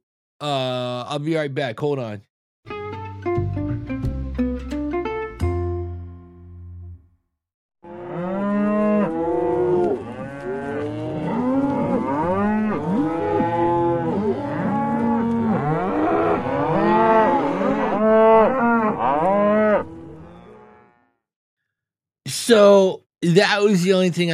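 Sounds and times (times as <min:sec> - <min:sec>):
speech: 0:00.4 - 0:02.3, 0:22.5 - 0:24.3
plucked musical tones: 0:02.7 - 0:07.1
chorus of cattle mooing: 0:07.8 - 0:21.1.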